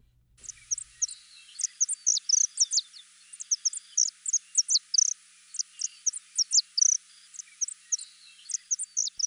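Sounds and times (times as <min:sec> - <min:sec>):
faint hiss: 0:00.0 - 0:09.2
saffron finch singing: 0:00.4 - 0:09.2.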